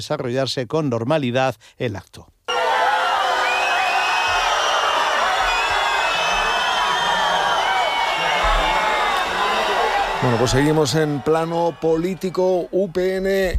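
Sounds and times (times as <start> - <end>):
speech: 0.0 - 2.4, 10.2 - 13.5
large crowd booing and shouting: 2.5 - 13.5.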